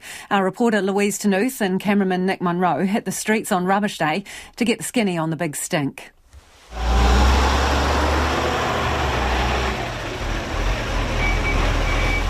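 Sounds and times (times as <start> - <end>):
speech: 0.3 - 6.9
rubbish collection truck engine rumble on early-morning bin day: 6.6 - 12.2
rubbish collection truck high reversing beeps: 11.1 - 12.2.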